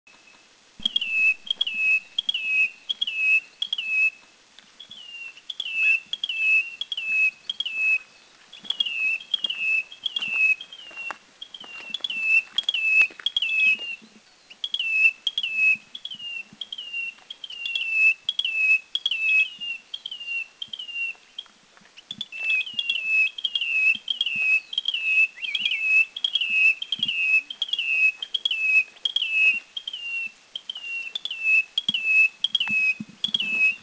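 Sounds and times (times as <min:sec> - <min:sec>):
Taiwan Bush-Warbler Bradypterus alishanensis in Yushan: 0:00.1 - 0:04.2, 0:04.8 - 0:33.8.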